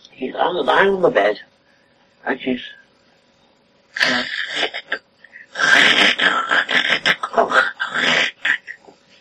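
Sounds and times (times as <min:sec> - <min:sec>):
speech: 0:00.2 - 0:01.5, 0:02.2 - 0:02.8, 0:04.0 - 0:05.0, 0:05.7 - 0:08.2
voice imitating snoring: 0:04.0 - 0:08.8.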